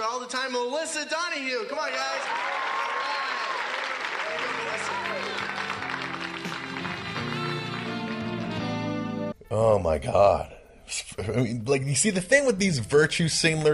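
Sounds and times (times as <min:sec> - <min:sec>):
speech: 0:00.3 - 0:02.6, 0:09.5 - 0:13.7
crowd cheers: 0:01.6 - 0:09.0
loud sustained audience applause: 0:01.7 - 0:08.8
crowd voices: 0:04.2 - 0:07.6.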